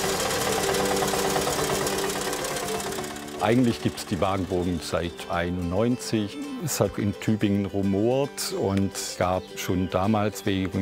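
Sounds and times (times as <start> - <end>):
tractor engine idling: 0.0 - 5.2
speech: 3.4 - 10.8.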